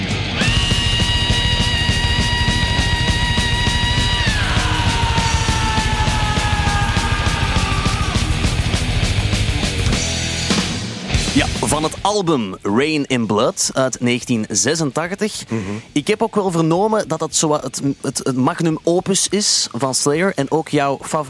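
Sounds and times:
fast dense heavy metal guitar riff: 0.0s - 11.8s
pounding drums: 0.2s - 12.1s
loud sustained high-pitched scream: 0.3s - 8.8s
speech: 11.8s - 21.2s.

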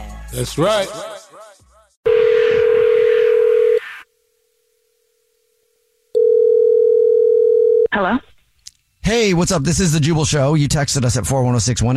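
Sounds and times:
speech: 0.3s - 1.1s, 8.0s - 8.3s, 9.1s - 11.9s
telephone ringing tone while placing a call: 2.1s - 3.9s, 6.2s - 7.9s.

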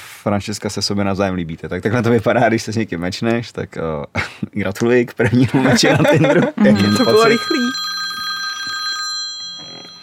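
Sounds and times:
speech: 0.2s - 7.8s
laughter: 5.2s - 7.7s
telephone ringing with a trilling electronic tone: 6.6s - 10.0s.

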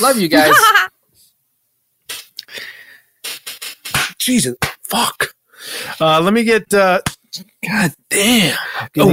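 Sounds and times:
speech: 0.0s - 0.9s, 4.2s - 9.1s
laughter: 0.3s - 0.9s
person slapping themselves swatting mosquitoes: 3.4s - 4.8s.

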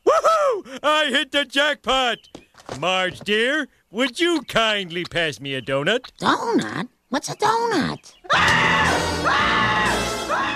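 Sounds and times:
speech: 1.0s - 10.5s
man screaming while running from a house: 8.3s - 10.5s.

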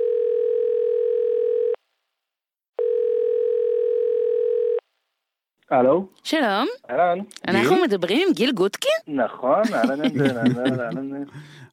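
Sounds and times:
telephone dial tone while dialing a call: 0.0s - 1.8s, 2.8s - 4.8s
speech: 5.7s - 11.7s
laughter: 9.6s - 11.5s.

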